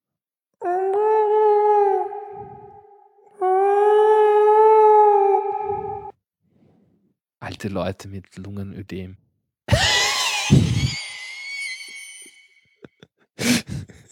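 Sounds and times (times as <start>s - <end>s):
voice imitating whale calls with long moaning tones: 0.6s - 6.1s
speech: 7.6s - 9.3s
laughter: 9.7s - 11.3s.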